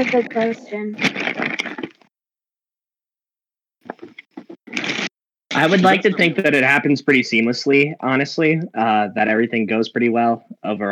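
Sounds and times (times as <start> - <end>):
speech: 0.0 - 1.8, 5.6 - 10.9
plastic bag crinkling: 0.0 - 2.0.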